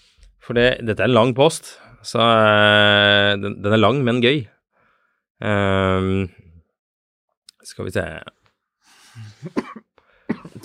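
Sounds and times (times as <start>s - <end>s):
speech: 0.5s - 4.6s, 5.4s - 6.4s, 7.7s - 8.4s, 9.2s - 9.8s
raspy throat-clearing: 9.3s - 10.6s
harsh coughs: 9.4s - 10.6s.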